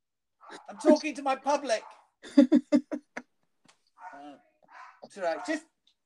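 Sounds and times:
dog barking: 0:00.4 - 0:01.0, 0:01.6 - 0:02.1, 0:04.0 - 0:05.7
dog whimpering and whining: 0:00.5 - 0:01.0
laughter: 0:00.5 - 0:01.2, 0:02.2 - 0:03.2
speech: 0:00.7 - 0:02.7, 0:05.1 - 0:05.7.

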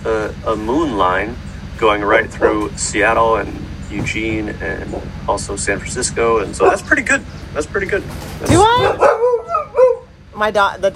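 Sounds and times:
speech: 0:00.0 - 0:09.3, 0:10.4 - 0:10.9
outdoor noise in Hawaii: 0:00.0 - 0:10.9
dogs barking and yipping outside in Hawaii: 0:02.0 - 0:02.9, 0:04.8 - 0:05.4, 0:06.4 - 0:07.2, 0:08.2 - 0:10.2.

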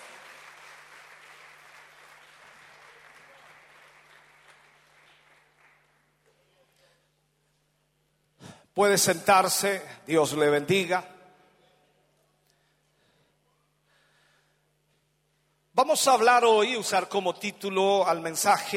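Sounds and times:
audience applauding in a large room: 0:00.0 - 0:06.5
speech: 0:08.8 - 0:11.2, 0:16.0 - 0:18.7.

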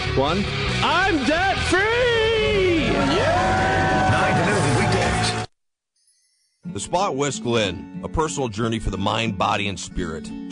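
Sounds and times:
speech: 0:00.2 - 0:04.6, 0:06.8 - 0:10.4
several voices screaming and cheering in celebration: 0:00.8 - 0:05.5
dense crowd roar: 0:01.1 - 0:05.5.

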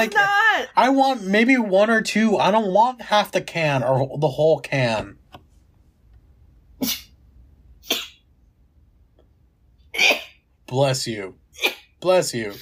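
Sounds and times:
speech: 0:00.0 - 0:05.2, 0:06.8 - 0:07.0, 0:10.0 - 0:12.6
person sneezing: 0:06.8 - 0:07.2, 0:07.8 - 0:08.2, 0:09.9 - 0:10.4, 0:11.6 - 0:12.0.

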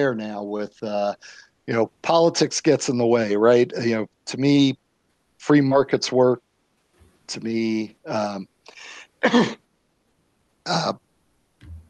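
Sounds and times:
speech: 0:00.0 - 0:04.8, 0:05.4 - 0:06.4, 0:07.3 - 0:09.6, 0:10.6 - 0:11.0
person clearing throat: 0:08.8 - 0:09.6, 0:10.7 - 0:11.0
person coughing: 0:08.8 - 0:09.6.

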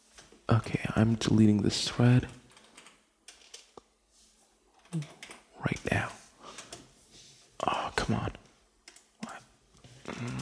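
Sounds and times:
speech: 0:00.5 - 0:02.4
typing on a computer keyboard: 0:02.2 - 0:03.8, 0:05.1 - 0:05.9, 0:08.8 - 0:09.3.

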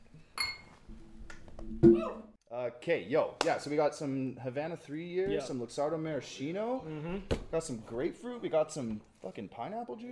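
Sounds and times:
glasses clinking in a toast: 0:00.4 - 0:00.9
speech: 0:02.6 - 0:10.1.

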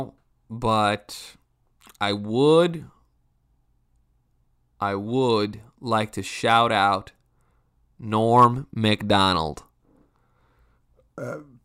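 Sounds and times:
speech: 0:00.0 - 0:01.4, 0:02.0 - 0:03.0, 0:04.8 - 0:07.2, 0:08.0 - 0:09.7, 0:11.2 - 0:11.5
burp: 0:11.2 - 0:11.6.

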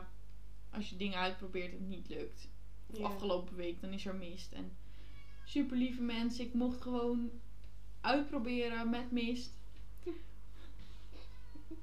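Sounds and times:
low steady hum: 0:00.0 - 0:11.8
speech: 0:00.8 - 0:04.8, 0:05.5 - 0:10.3
cat meowing softly: 0:05.0 - 0:05.6, 0:11.2 - 0:11.8.

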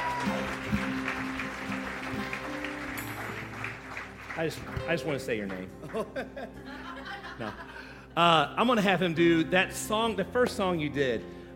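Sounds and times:
crowd applauding: 0:00.0 - 0:07.2
speech: 0:04.4 - 0:06.8, 0:07.4 - 0:11.4
laughter: 0:05.8 - 0:08.1.

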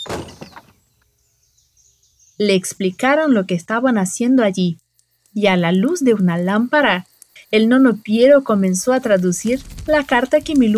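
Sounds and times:
stone house door opening with a solid thud: 0:00.0 - 0:00.8
speech: 0:02.4 - 0:10.7.

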